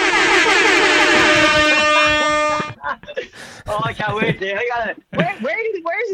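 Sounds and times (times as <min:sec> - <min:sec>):
loud blaring air horn blast: 0:00.0 - 0:02.8
laughter: 0:00.0 - 0:05.5
speech: 0:04.0 - 0:06.1.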